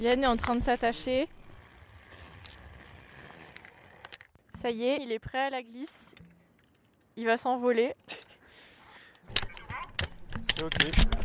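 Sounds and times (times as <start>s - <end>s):
speech: 0.0s - 1.4s, 4.6s - 6.0s, 7.2s - 8.1s, 10.6s - 11.2s
metal gate clanking open: 9.3s - 11.2s
sharp bright clinks and rattles of metal: 9.3s - 11.2s.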